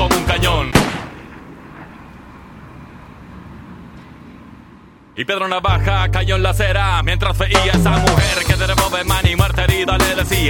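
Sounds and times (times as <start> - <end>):
music: 0.0 - 1.0, 5.6 - 10.4
gunshot: 0.7 - 1.4
speech: 5.2 - 10.4.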